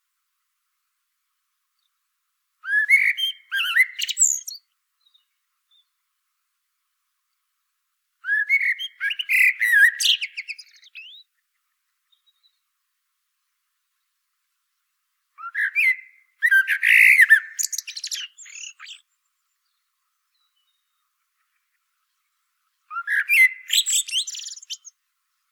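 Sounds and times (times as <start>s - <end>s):
Common blackbird Turdus merula singing warbled phrases: 2.6s - 5.9s, 8.2s - 11.3s, 15.4s - 21.0s, 22.9s - 25.0s.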